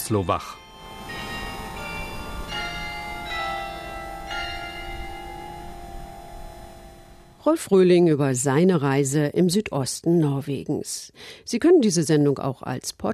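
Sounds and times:
cathedral carillon bells chiming the full hour in Kristiansand Norway: 0.0s - 7.4s
speech: 0.1s - 0.6s, 7.4s - 13.1s.

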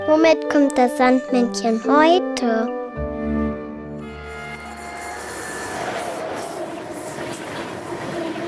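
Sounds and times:
speech: 0.3s - 2.8s
train wheels rumbling and clattering along rails: 5.6s - 8.4s.

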